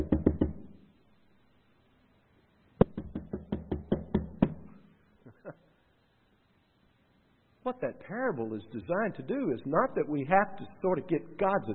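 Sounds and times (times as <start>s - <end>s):
sharp knocks on a hard surface: 0.0s - 0.6s, 2.8s - 4.6s
speech: 7.7s - 11.7s.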